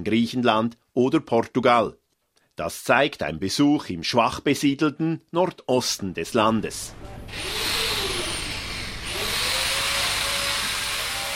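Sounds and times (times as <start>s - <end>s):
speech: 0.0s - 2.0s, 2.6s - 7.7s
power drill whining at a harbour construction site: 7.2s - 11.3s
steady loud mechanical roar: 7.2s - 11.3s.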